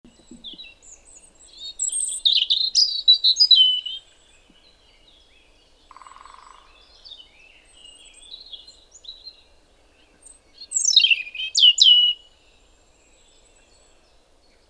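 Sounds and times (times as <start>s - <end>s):
European robin Erithacus rubecula singing: 0.0s - 9.4s, 10.0s - 12.5s.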